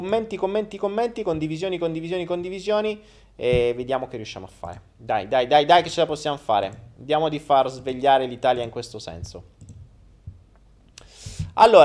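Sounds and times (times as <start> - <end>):
speech: 0.0 - 9.6, 11.6 - 11.8
sharp clicks: 8.6 - 9.9.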